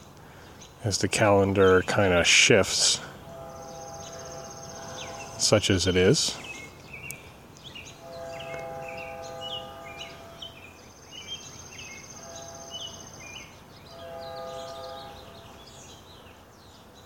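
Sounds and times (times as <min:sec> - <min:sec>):
birds chirping: 0:00.0 - 0:17.0
insects buzzing: 0:00.0 - 0:17.0
speech: 0:00.8 - 0:03.1, 0:05.5 - 0:06.4
train horn blasts: 0:01.2 - 0:06.9, 0:07.8 - 0:16.5.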